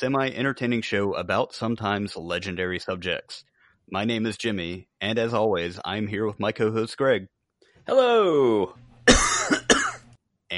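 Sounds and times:
speech: 0:00.0 - 0:09.4
faint quiet breath: 0:03.4 - 0:03.9
harsh forceful coughs: 0:09.1 - 0:10.1.

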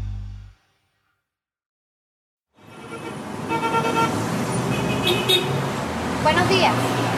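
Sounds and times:
low rumble: 0:00.0 - 0:00.6
dense city traffic engine drone in Caracas streets heard from inside a moving bus: 0:02.6 - 0:07.1
speech: 0:06.2 - 0:07.0.

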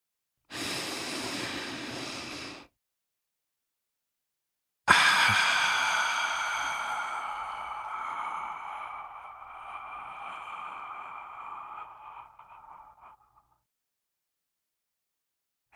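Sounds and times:
long airy deep inhale: 0:00.5 - 0:02.7, 0:04.9 - 0:13.6
strong exhaled sigh: 0:00.5 - 0:02.7, 0:04.9 - 0:13.6.

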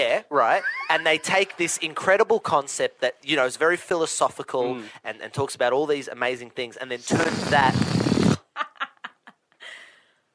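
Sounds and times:
speech: 0:00.0 - 0:08.2
squeaky buzzing fart-like blurts from a balloon: 0:07.0 - 0:08.6
burst of noise: 0:07.1 - 0:08.4.

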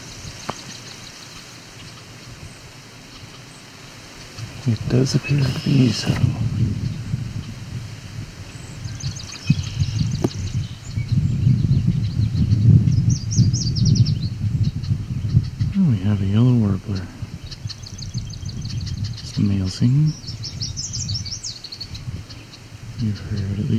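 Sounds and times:
yellow warbler singing song variants: 0:00.0 - 0:07.7, 0:08.4 - 0:23.7
outdoor rustling and wind noise: 0:00.0 - 0:23.7
low voice: 0:04.6 - 0:06.6, 0:15.7 - 0:17.3, 0:19.2 - 0:20.2, 0:23.0 - 0:23.7
speech: 0:04.6 - 0:06.8, 0:19.8 - 0:20.2.

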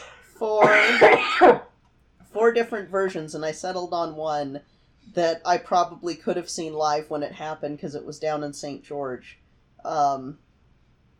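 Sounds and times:
person clearing throat with a rough voiced rasp: 0:00.6 - 0:01.6
person coughing: 0:00.6 - 0:01.6
speech: 0:00.9 - 0:01.7, 0:02.5 - 0:10.4.

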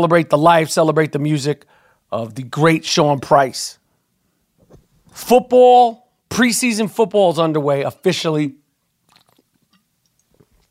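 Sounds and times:
speech: 0:00.0 - 0:03.8, 0:05.2 - 0:08.6
person sipping water: 0:09.0 - 0:10.7.

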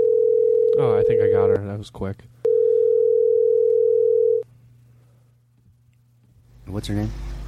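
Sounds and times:
telephone dial tone: 0:00.0 - 0:00.8, 0:02.5 - 0:04.4
speech: 0:00.8 - 0:02.4, 0:06.7 - 0:07.3.

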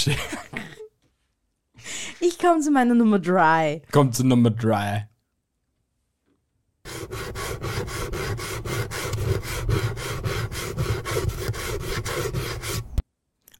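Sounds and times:
speech: 0:00.0 - 0:00.4, 0:02.2 - 0:05.1
grating on a hand grater: 0:06.9 - 0:13.0.

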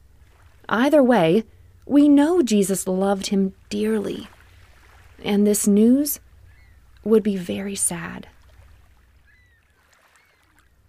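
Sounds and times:
speech: 0:00.7 - 0:04.4, 0:05.2 - 0:06.2, 0:07.0 - 0:08.3
oars moving a small boat through calm water: 0:04.2 - 0:05.2, 0:08.3 - 0:10.8
faint whistling calls: 0:06.4 - 0:06.9, 0:09.2 - 0:10.8.

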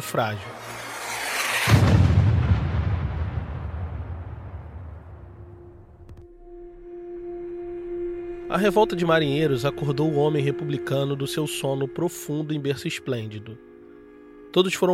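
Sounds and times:
speech: 0:00.0 - 0:00.7, 0:08.5 - 0:13.7, 0:14.5 - 0:14.9
cannon shot: 0:00.7 - 0:06.4.

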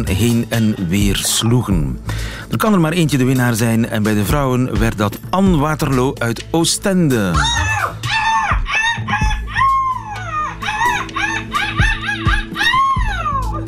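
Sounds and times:
speech: 0:00.0 - 0:07.8
woman imitating seagull screeches on stage in a seagull-screaming contest: 0:07.4 - 0:13.6.

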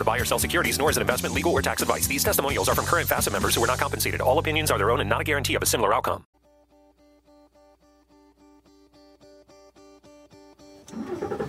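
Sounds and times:
speech: 0:00.0 - 0:06.3
car starter cranking: 0:10.8 - 0:11.4
car engine roaring to life and revving: 0:10.9 - 0:11.4.

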